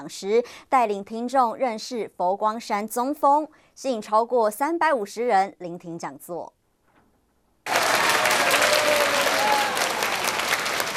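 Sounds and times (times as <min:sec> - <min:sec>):
speech: 0:00.0 - 0:06.6
audience applauding enthusiastically to welcome a speaker: 0:07.7 - 0:10.9.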